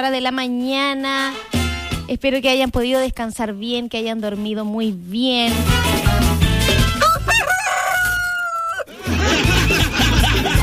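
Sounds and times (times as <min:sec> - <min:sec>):
speech: 0:00.0 - 0:07.0
rooster crowing: 0:07.0 - 0:08.9
laughter: 0:08.8 - 0:10.6.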